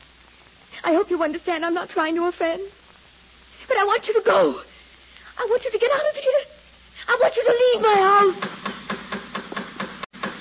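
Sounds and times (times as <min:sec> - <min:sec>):
low hum: 0:00.0 - 0:10.3
speech: 0:00.8 - 0:02.8, 0:03.7 - 0:04.7, 0:05.4 - 0:06.5, 0:07.1 - 0:08.6
knocking on a door: 0:08.3 - 0:10.3.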